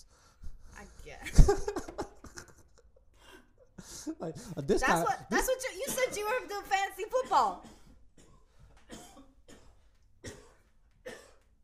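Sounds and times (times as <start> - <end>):
speech: 1.2 - 1.8, 4.2 - 7.7
laughter: 1.2 - 6.6
person coughing harshly: 7.2 - 11.5.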